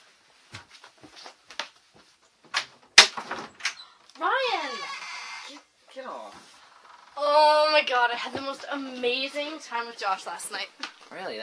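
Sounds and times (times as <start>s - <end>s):
door swinging open with thump: 2.5s - 3.8s
speech: 7.8s - 11.4s.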